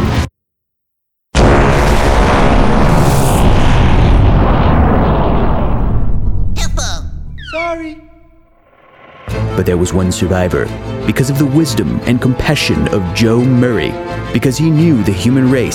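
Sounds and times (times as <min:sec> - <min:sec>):
massive explosion with roaring rumble: 0:01.4 - 0:07.4
speech: 0:09.6 - 0:15.7.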